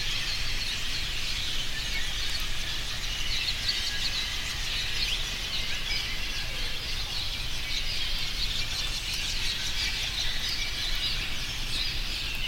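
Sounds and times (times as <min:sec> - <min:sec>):
cave swallows giving short high chirps: 0:00.0 - 0:12.4.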